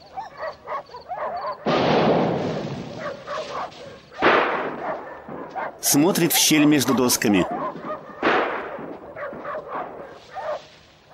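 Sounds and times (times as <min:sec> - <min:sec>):
distant explosion: 0:01.6 - 0:05.8, 0:07.5 - 0:10.3
speech: 0:05.8 - 0:07.6.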